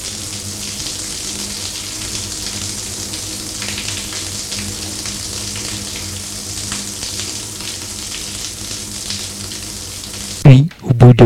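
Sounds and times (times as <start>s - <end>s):
shower running in a bathroom: 0.0s - 10.5s.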